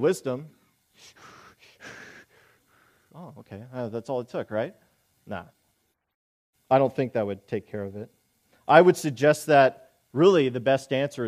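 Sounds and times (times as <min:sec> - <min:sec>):
speech: 0:00.0 - 0:01.3, 0:03.2 - 0:05.6, 0:06.7 - 0:11.2
person taking a deep breath as a breathing technique: 0:01.0 - 0:03.2.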